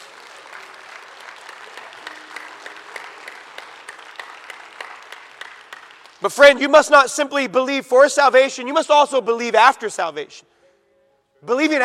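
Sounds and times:
congregation applauding: 0.0s - 6.7s
speech: 6.2s - 10.6s, 11.4s - 11.8s.

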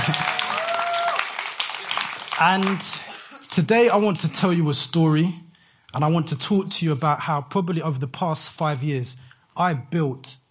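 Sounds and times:
audience cheers and whistles: 0.0s - 1.4s
audience applause: 0.0s - 4.4s
speech: 2.4s - 10.4s.

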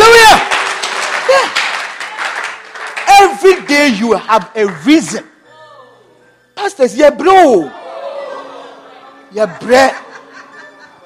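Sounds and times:
person shouting: 0.0s - 0.5s
crowd clapping: 0.0s - 5.3s
speech: 3.4s - 5.3s, 6.6s - 7.8s, 9.3s - 10.0s
laughter: 7.7s - 11.0s.

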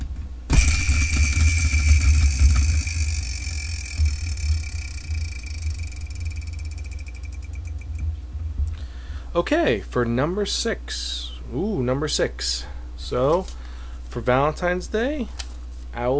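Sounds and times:
prize wheel spinning: 0.5s - 8.0s
speech: 9.4s - 16.1s.

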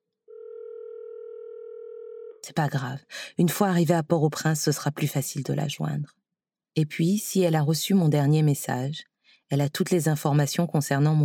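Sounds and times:
telephone ringing tone down the line, call unanswered: 0.3s - 2.4s
speech: 2.4s - 6.2s, 6.8s - 11.2s.

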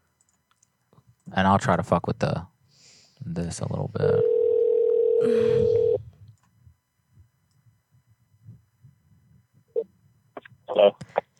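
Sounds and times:
speech: 1.3s - 2.5s, 3.2s - 4.3s, 5.2s - 5.9s
phone tone as a call is placed: 4.1s - 6.0s.

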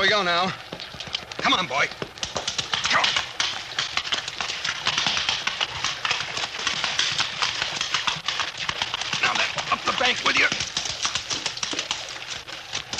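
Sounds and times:
horse hooves clattering through a rocky-bottomed creek bed: 0.0s - 12.9s
speech: 0.1s - 0.8s, 1.4s - 2.1s
rushing water in a rocky creek: 4.0s - 12.9s.

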